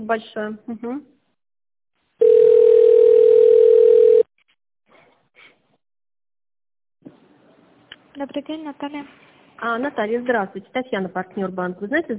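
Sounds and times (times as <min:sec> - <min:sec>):
speech: 0:00.0 - 0:01.2, 0:08.2 - 0:12.1
steady mid-pitched telephone tone while a call is transferred: 0:02.2 - 0:04.3.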